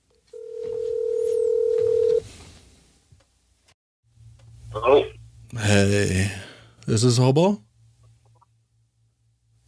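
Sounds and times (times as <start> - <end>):
telephone tone while calling someone back: 0.3 - 2.2
speech: 5.8 - 7.7.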